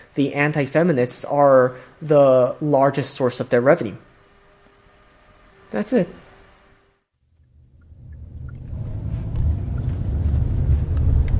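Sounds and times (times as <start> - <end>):
speech: 0.2 - 4.1, 5.7 - 6.2
car engine and road noise driving toward a tech hub in South Korea: 7.4 - 11.3.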